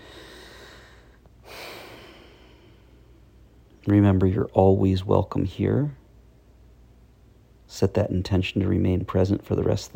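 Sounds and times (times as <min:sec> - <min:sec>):
deep breaths of slow airy flow: 0:00.0 - 0:03.4
speech: 0:03.9 - 0:06.0, 0:07.8 - 0:09.9.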